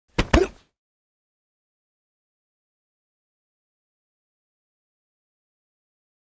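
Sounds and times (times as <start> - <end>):
double body impact: 0.2 - 0.6
person vocalizing: 0.2 - 0.6.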